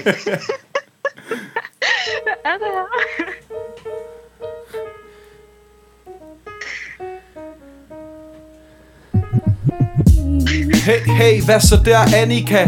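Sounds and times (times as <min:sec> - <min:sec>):
speech: 0:00.0 - 0:00.6, 0:02.5 - 0:03.3, 0:09.8 - 0:12.6
laughter: 0:00.0 - 0:03.4
deep booming bass kicks: 0:09.2 - 0:10.5, 0:11.6 - 0:12.0
bright plucky melodic loop of a hip-hop beat: 0:09.2 - 0:10.8.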